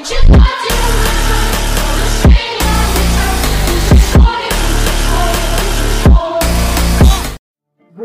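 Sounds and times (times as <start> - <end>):
Brazilian funk music: 0.1 - 7.4.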